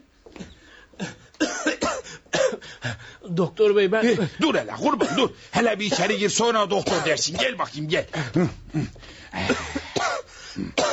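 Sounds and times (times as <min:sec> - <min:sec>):
person coughing harshly at a doctor's: 0:01.0 - 0:02.7, 0:05.0 - 0:06.2, 0:06.8 - 0:07.6, 0:08.2 - 0:10.9
speech: 0:03.3 - 0:09.8.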